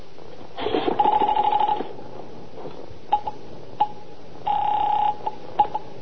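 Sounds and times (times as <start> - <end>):
steady telephone ringing tone: 0.6 - 2.0, 3.1 - 5.9.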